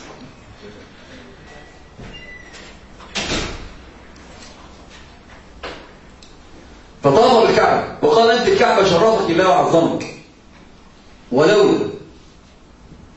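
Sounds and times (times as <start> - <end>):
door swinging shut with a solid thump: 3.0 - 3.8
speech: 7.0 - 10.1, 11.3 - 12.0.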